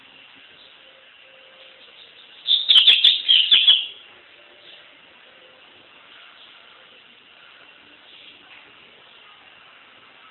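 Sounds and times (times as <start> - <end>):
double-collared seedeater singing sharp sweet chirps: 1.8 - 4.0.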